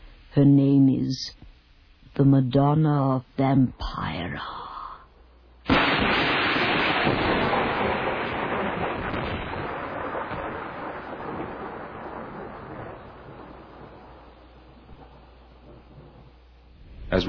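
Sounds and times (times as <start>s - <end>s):
speech: 0.4s - 1.5s, 2.2s - 4.6s
steady rain falling at night: 5.7s - 16.8s.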